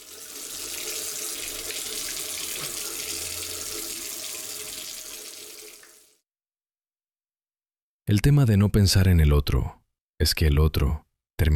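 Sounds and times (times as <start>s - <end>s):
faucet running with hissing splash of water: 0.0s - 6.2s
speech: 8.1s - 11.5s.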